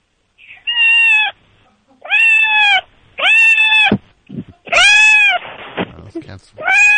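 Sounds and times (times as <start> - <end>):
cat meowing loudly and plaintively: 0.4 - 1.4, 2.0 - 4.0, 4.6 - 5.5, 6.6 - 6.9.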